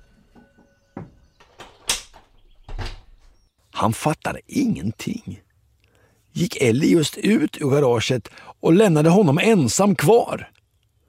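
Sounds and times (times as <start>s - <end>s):
back door clunking and rattling: 0.0s - 3.4s
speech: 3.8s - 5.4s, 6.4s - 10.6s.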